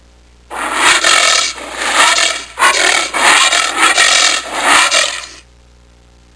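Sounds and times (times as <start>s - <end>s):
anteater: 0.5s - 5.4s.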